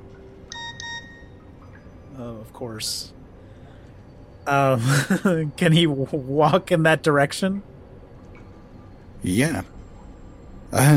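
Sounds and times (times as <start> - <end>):
low hum: 0.0 - 10.9
old mobile phone SMS beeps: 0.5 - 1.4
speech: 2.2 - 3.2, 4.5 - 7.7, 9.2 - 9.7, 10.7 - 10.9
laughter: 4.8 - 5.5.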